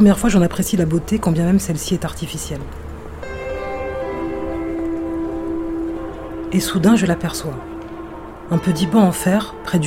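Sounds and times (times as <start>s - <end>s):
speech: 0.0s - 2.9s, 6.5s - 7.7s, 8.5s - 9.8s
commuter train passing in the distance: 0.0s - 9.8s.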